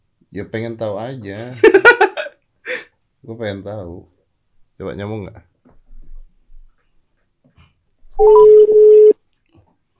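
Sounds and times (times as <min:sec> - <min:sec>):
speech: 0:00.3 - 0:02.1, 0:03.2 - 0:04.1, 0:04.8 - 0:05.5
laughter: 0:01.6 - 0:02.4
phone dialing tones: 0:08.2 - 0:09.2.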